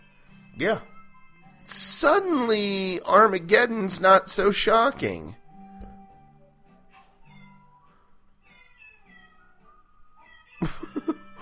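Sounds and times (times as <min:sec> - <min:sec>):
speech: 0:00.6 - 0:00.9, 0:01.7 - 0:05.4
recorded cats meowing a tune: 0:07.2 - 0:07.7, 0:08.4 - 0:09.6, 0:10.2 - 0:11.3.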